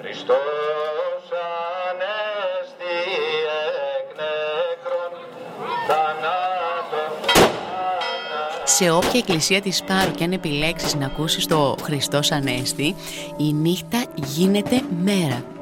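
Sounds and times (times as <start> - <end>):
voices singing a chant: 0.0 - 13.0
speech: 0.1 - 0.8, 8.7 - 15.5
firecracker bang on Holy Saturday night on Paros: 7.2 - 8.0.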